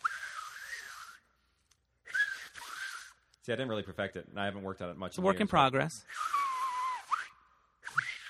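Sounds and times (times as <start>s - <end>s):
breathy hissy whistle made with the tongue: 0.0s - 3.4s, 6.0s - 8.2s
speech: 3.4s - 6.3s.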